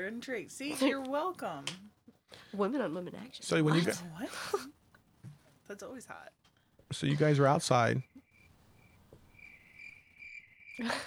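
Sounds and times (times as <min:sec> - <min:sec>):
speech: 0:00.0 - 0:04.8, 0:05.7 - 0:08.2, 0:10.8 - 0:11.0
cicadas trilling outdoors in the woods: 0:07.6 - 0:10.8.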